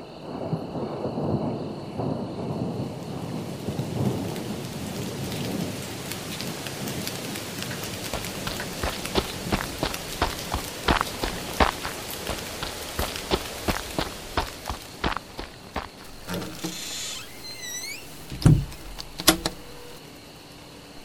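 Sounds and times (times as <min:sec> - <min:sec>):
steady rain on a cold night: 0:00.1 - 0:21.0
rolling thunder: 0:00.2 - 0:10.2.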